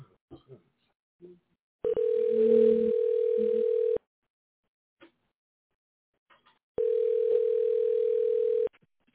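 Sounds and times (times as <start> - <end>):
long steady electronic telephone ringing tones: 1.8 - 4.0, 6.8 - 8.7.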